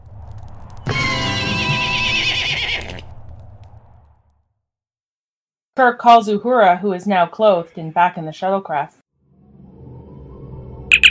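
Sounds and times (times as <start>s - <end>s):
horse neighing during a street battle: 0.9s - 3.0s
speech: 5.8s - 9.0s.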